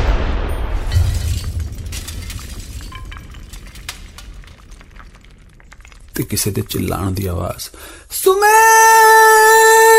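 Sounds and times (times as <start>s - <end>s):
loud explosion outside a house: 0.0s - 6.8s
glassy clinks and rattling debris: 0.9s - 6.6s
speech: 6.2s - 9.9s.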